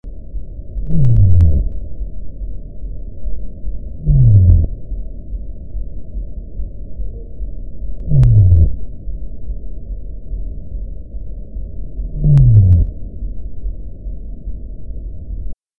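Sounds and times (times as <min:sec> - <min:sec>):
sei whale: 0:00.2 - 0:15.6.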